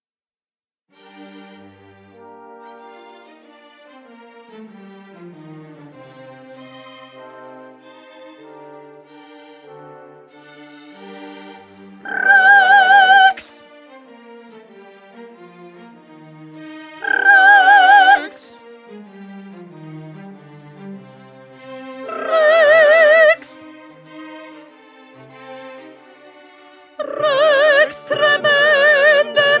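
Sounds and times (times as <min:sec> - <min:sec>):
soprano singing: 0:12.0 - 0:13.6, 0:17.0 - 0:18.6, 0:22.0 - 0:23.7, 0:27.0 - 0:29.5.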